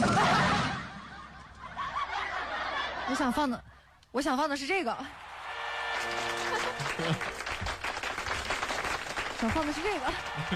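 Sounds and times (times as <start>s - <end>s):
laughter: 0.0s - 3.5s, 5.7s - 7.8s, 9.4s - 10.5s
speech: 3.1s - 5.2s, 9.4s - 10.5s
crowd applauding: 5.2s - 10.5s.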